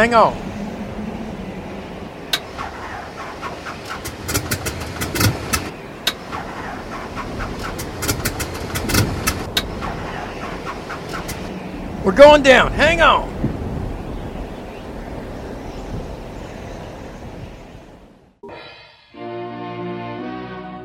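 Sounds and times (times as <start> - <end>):
speech: 0.0 - 0.5, 12.0 - 13.3
airplane engine cranking and sputtering, trying to start: 2.3 - 11.5.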